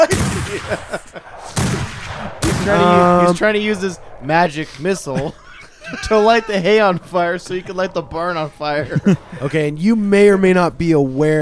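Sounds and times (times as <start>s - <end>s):
laughter: 0.0s - 1.4s, 4.5s - 9.9s
speech: 0.0s - 1.4s, 2.6s - 11.4s
pistol shots fired at hay in a barn: 0.0s - 3.5s.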